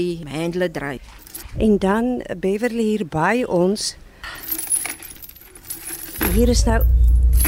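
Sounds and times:
speech: 0:00.0 - 0:04.6, 0:06.3 - 0:07.0
metal chains rattling in buckets and baskets: 0:01.0 - 0:01.5, 0:04.3 - 0:07.4.

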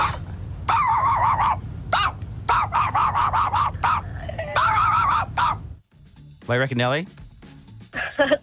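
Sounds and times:
low rumble: 0:00.0 - 0:05.8
person imitating dog barking: 0:00.7 - 0:05.6
speech: 0:06.5 - 0:07.2, 0:08.2 - 0:08.4.

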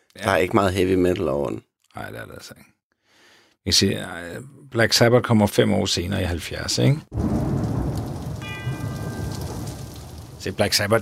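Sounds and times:
speech: 0:00.1 - 0:02.7, 0:03.6 - 0:07.6, 0:10.4 - 0:11.0
deep thunder rumbling: 0:07.1 - 0:11.0
steady heavy rain: 0:07.2 - 0:11.0
single bell ringing: 0:08.4 - 0:10.1.

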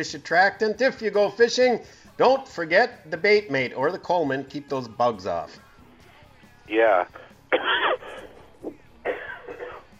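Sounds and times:
speech: 0:00.0 - 0:05.6, 0:06.7 - 0:07.8
person coughing harshly in a coughing fit: 0:07.6 - 0:08.3, 0:09.1 - 0:09.9.

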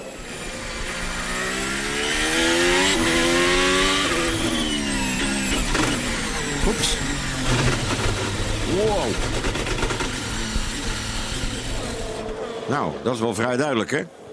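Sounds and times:
F1 racing car high-pitched engine downshifting: 0:00.0 - 0:12.7
F1 car gearbox clunking on downshift: 0:05.2 - 0:12.4
speech: 0:12.7 - 0:14.2.

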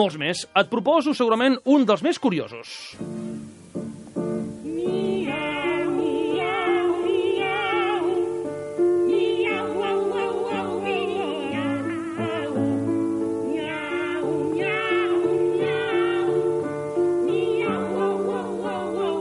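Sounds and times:
speech: 0:00.0 - 0:03.5
sustained instrumental accompaniment: 0:03.0 - 0:19.1
two sopranos singing a comic operatic cat duet of meows: 0:04.6 - 0:19.1.

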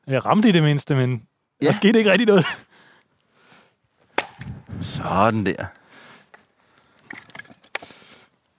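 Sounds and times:
speech: 0:00.1 - 0:02.7, 0:05.0 - 0:05.8
faint outdoor rustle: 0:00.4 - 0:08.5
axe blow striking a piece of wood with a knot: 0:04.2 - 0:04.5.

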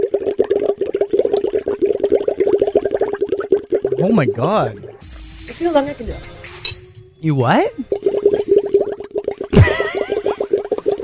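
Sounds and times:
bubbling gurgle: 0:00.0 - 0:05.0, 0:07.7 - 0:11.0
speech: 0:04.0 - 0:04.8, 0:05.6 - 0:06.4, 0:07.2 - 0:08.0.

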